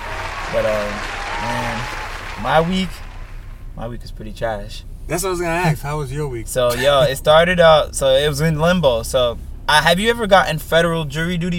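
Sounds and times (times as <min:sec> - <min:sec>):
applause: 0:00.0 - 0:03.5
voices calling out: 0:00.0 - 0:04.0, 0:05.1 - 0:09.1
speech: 0:00.5 - 0:03.0, 0:03.8 - 0:11.5.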